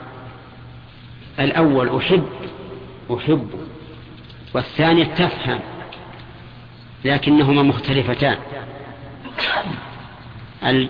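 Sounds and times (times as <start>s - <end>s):
speech: 1.4s - 3.7s, 4.5s - 5.7s, 7.0s - 8.5s, 9.6s - 9.9s, 10.6s - 10.8s
abrupt explosive sneezes: 9.2s - 9.9s.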